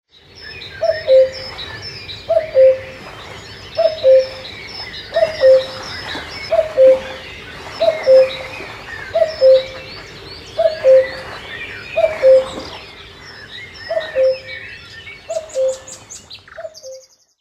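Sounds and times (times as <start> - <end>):
cuckoo calling: 0.8 - 3.1, 3.8 - 12.8, 13.9 - 14.6, 15.3 - 17.1.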